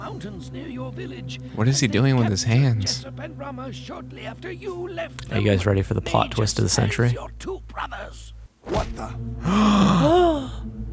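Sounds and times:
speech: 0.1s - 10.9s
person gasping theatrically: 9.4s - 10.6s.

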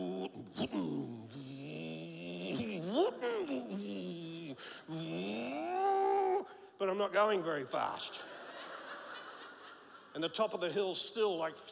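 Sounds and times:
voice imitating car engine revving with slipping clutch uphill: 0.0s - 6.5s
speech: 0.5s - 1.1s, 7.0s - 8.3s, 10.1s - 11.7s
laughter: 8.1s - 10.4s.

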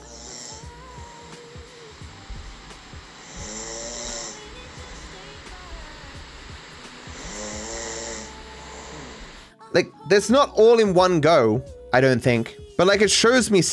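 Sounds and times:
constant hiss: 0.0s - 9.5s
recorded snoring played from a sleep app through a phone speaker: 0.0s - 9.5s
speech: 9.7s - 13.7s.

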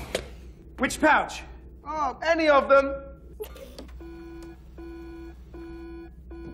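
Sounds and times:
low hum: 0.0s - 6.5s
speech: 0.8s - 3.7s
sample-testing machine alarm beeping because of a hot sample: 3.9s - 6.5s.

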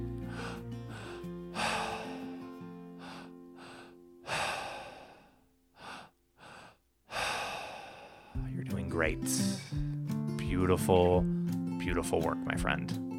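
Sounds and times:
deep breaths during a guided breathing exercise: 0.2s - 8.4s, 9.4s - 10.0s
speech: 8.6s - 9.9s, 10.6s - 13.0s.

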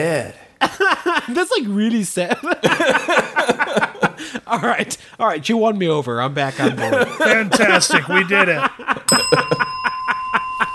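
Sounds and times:
speech: 0.0s - 0.4s, 1.3s - 9.7s
laughter: 0.6s - 1.4s, 2.2s - 4.9s, 6.5s - 10.7s
bell ringing in bright short strikes: 9.1s - 10.7s.

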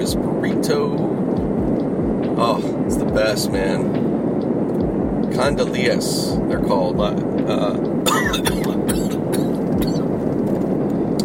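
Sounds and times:
road noise rumble inside a moving vehicle: 0.0s - 11.2s
speech: 0.1s - 1.2s, 2.4s - 4.2s, 5.3s - 9.1s
coughing: 8.0s - 10.1s.

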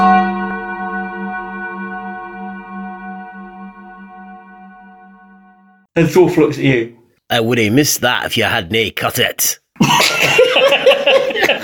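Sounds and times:
gong ringing after falling: 0.0s - 5.9s
speech: 6.0s - 10.8s
laughter: 9.8s - 11.6s.

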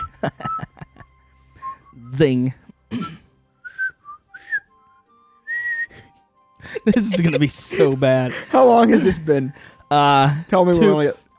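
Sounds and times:
person whistling a short wavering tune while inhaling: 0.0s - 0.9s, 1.6s - 2.0s, 3.6s - 6.2s
laughter: 0.0s - 1.1s, 6.6s - 11.0s
speech: 0.2s - 0.7s, 2.0s - 2.6s, 6.9s - 11.3s
airy breath noise: 5.8s - 7.0s, 7.6s - 8.6s, 9.5s - 9.9s.

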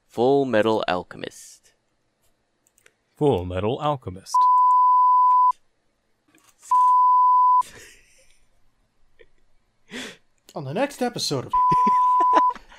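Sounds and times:
speech: 0.2s - 1.6s, 3.2s - 4.5s, 10.6s - 12.0s
loud steady censor beeps over speech: 4.4s - 5.6s, 6.7s - 7.6s, 11.5s - 12.6s
laughter: 7.6s - 8.4s, 11.6s - 12.7s.

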